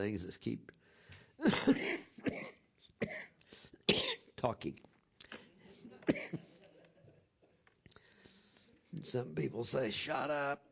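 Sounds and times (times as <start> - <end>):
speech: 0.0 - 2.1, 4.4 - 4.9, 9.0 - 10.7
person coughing: 1.4 - 4.3, 6.0 - 6.5.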